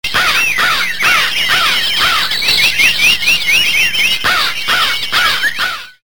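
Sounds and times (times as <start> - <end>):
birds calling in a busy chorus of squawking, chattering notes: 0.0 - 6.0.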